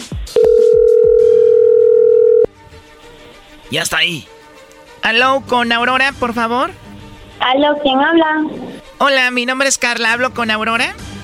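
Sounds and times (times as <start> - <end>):
steady mid-pitched telephone line tone: 0.4 - 2.5
speech: 3.7 - 4.4, 5.0 - 6.8, 7.4 - 11.0.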